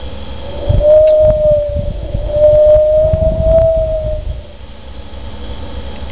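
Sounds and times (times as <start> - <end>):
wind blowing through reeds whistling: 0.0 - 4.6.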